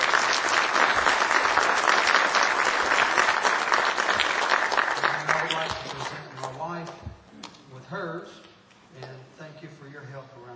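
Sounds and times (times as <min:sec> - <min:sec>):
church audience applauding: 0:00.0 - 0:06.6.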